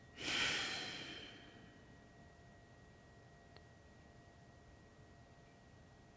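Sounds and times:
strong exhale during restorative yoga breathing exercise: 0:00.2 - 0:01.7.

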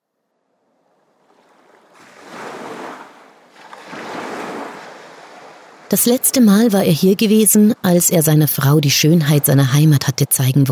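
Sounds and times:
ocean surf roaring: 0:00.6 - 0:10.2
speech: 0:05.9 - 0:10.6.

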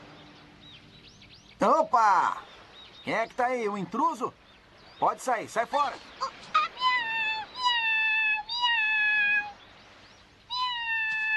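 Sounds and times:
speech: 0:01.6 - 0:04.4, 0:05.0 - 0:06.4
cat meowing in long drawn-out tones: 0:06.6 - 0:09.6, 0:10.5 - 0:11.3.

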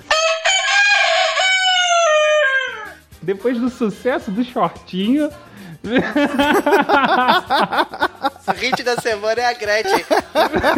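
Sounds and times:
rooster crowing: 0:00.0 - 0:03.0
speech: 0:03.2 - 0:10.7
laughter: 0:05.8 - 0:10.7.

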